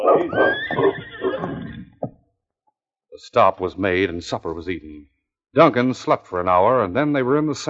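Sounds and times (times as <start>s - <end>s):
horse neighing: 0.0s - 2.0s
speech: 3.2s - 7.6s.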